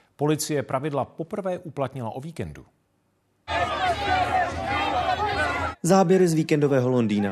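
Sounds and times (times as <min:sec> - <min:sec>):
speech: 0:00.2 - 0:02.8, 0:05.8 - 0:07.2
crowd of demonstrators shouting and chattering on a street: 0:03.5 - 0:05.8.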